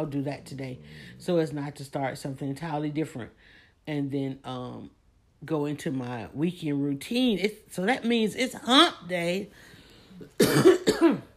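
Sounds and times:
speech: 0.0s - 11.3s
person coughing: 10.3s - 11.3s.

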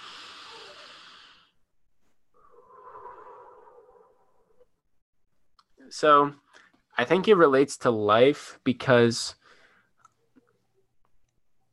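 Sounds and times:
person taking a deep breath: 0.0s - 1.7s, 2.3s - 4.8s
speech: 5.9s - 6.4s, 7.0s - 9.4s.

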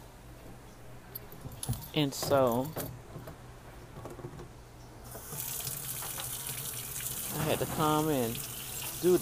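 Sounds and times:
speech: 1.7s - 2.9s, 7.5s - 9.2s
water from drinking bottles emptied into a sink: 5.2s - 9.2s.

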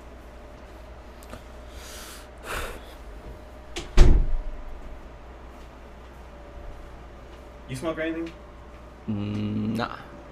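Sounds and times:
door shutting with a thud: 3.8s - 4.6s
speech: 7.7s - 8.4s, 9.1s - 10.0s.

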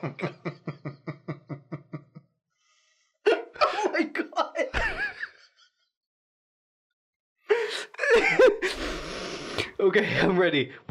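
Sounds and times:
speech: 0.0s - 0.6s, 9.9s - 10.8s
laughter: 0.0s - 2.3s, 3.3s - 5.8s, 8.0s - 9.0s
heavy gasping breathing with whimpering catches: 7.5s - 9.8s.

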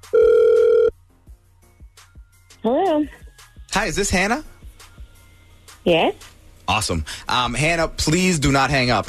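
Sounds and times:
ringback tone from an outgoing phone call: 0.0s - 0.9s
speech: 2.6s - 3.2s, 3.8s - 4.5s, 5.8s - 9.0s.

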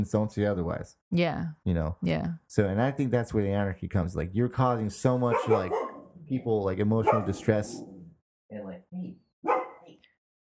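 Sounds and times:
speech: 0.0s - 7.9s
dog barking: 5.3s - 6.1s, 7.0s - 7.6s, 9.4s - 10.0s.

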